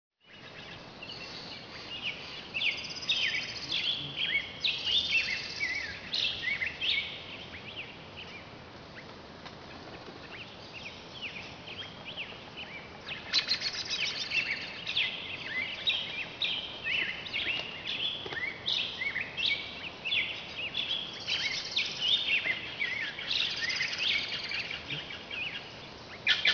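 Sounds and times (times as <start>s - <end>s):
forest birds in Butano: 0.2s - 26.5s.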